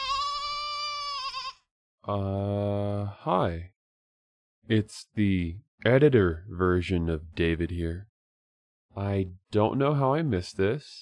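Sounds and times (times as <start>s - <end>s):
goat bleating: 0.0s - 1.7s
speech: 2.1s - 3.7s, 4.7s - 8.1s, 9.0s - 11.0s.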